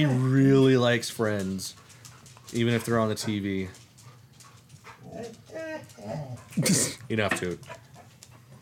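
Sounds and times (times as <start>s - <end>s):
speech: 0.0s - 1.8s, 2.5s - 3.8s, 5.2s - 7.8s
dog whimpering: 5.0s - 6.6s.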